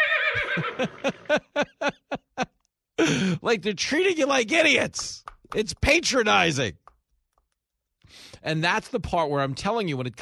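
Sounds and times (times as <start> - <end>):
horse whinnying in a commercial: 0.0 - 1.3
laughter: 0.3 - 3.4
speech: 0.4 - 1.7, 3.1 - 6.8, 8.4 - 10.2.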